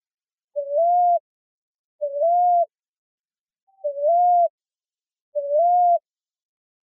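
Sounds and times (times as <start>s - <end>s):
common ground dove giving soft low upslurred coos in Arizona, United States: 0.6s - 1.2s, 2.0s - 2.7s, 3.8s - 4.5s, 5.4s - 6.1s.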